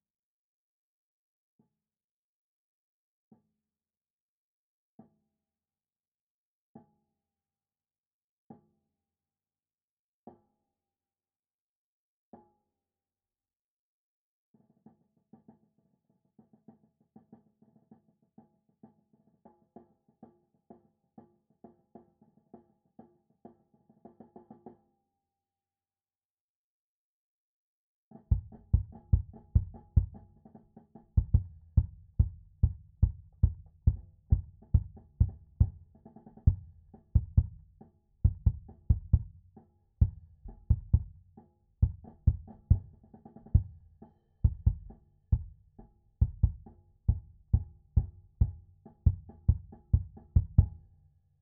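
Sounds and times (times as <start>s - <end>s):
high bass drum recorded with a SubKick: 28.3s - 30.3s, 31.2s - 50.9s.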